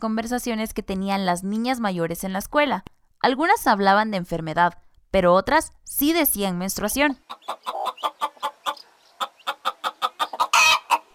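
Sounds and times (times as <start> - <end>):
speech: 0.0 - 8.2
hens clucking: 7.2 - 11.1.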